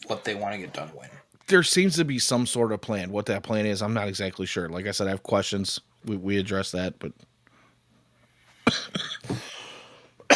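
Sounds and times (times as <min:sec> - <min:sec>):
speech: 0:00.1 - 0:07.3
person coughing: 0:08.6 - 0:09.7.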